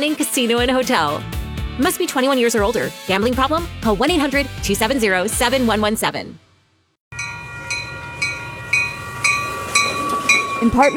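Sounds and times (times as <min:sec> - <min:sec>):
speech: 0:00.0 - 0:06.4, 0:10.6 - 0:10.9
train rolling along the rails: 0:07.2 - 0:10.9
clacks of train wheels: 0:07.7 - 0:10.9.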